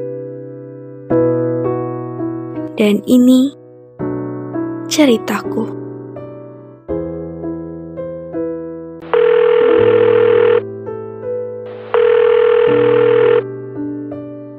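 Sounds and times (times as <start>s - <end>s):
soft sustained music: 0.0s - 14.5s
speech: 2.8s - 3.6s, 4.9s - 5.8s
electronic ringback tones from a phone line: 9.0s - 10.6s, 11.7s - 13.4s.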